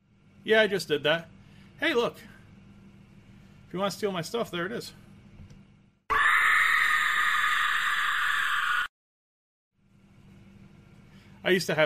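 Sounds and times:
speech: 0.4s - 2.4s, 3.7s - 5.0s, 11.4s - 11.8s
pig scream sound effect: 6.1s - 8.9s.

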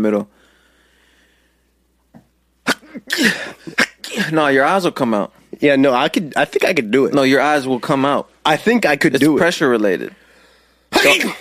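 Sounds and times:
speech: 0.0s - 0.4s, 3.0s - 10.2s, 10.9s - 11.3s
human sneeze: 2.6s - 4.4s, 10.9s - 11.3s.

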